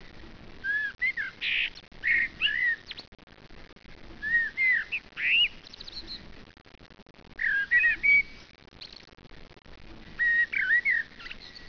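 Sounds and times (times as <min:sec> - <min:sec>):
blackbird singing: 0:00.6 - 0:03.1, 0:04.2 - 0:06.3, 0:07.4 - 0:09.0, 0:10.2 - 0:11.6.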